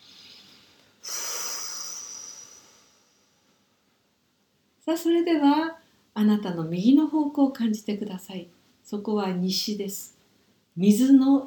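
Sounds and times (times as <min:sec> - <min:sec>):
deep breath in through nose and out through mouth: 0:00.0 - 0:03.6
speech: 0:04.9 - 0:10.2, 0:10.8 - 0:11.4.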